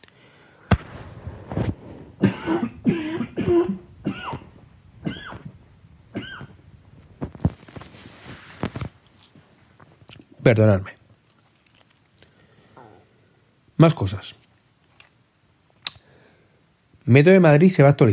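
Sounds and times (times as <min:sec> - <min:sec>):
throat clearing: 0:02.2 - 0:05.5
person coughing: 0:02.2 - 0:06.6
speech: 0:10.5 - 0:11.0, 0:13.8 - 0:14.4, 0:17.1 - 0:18.1.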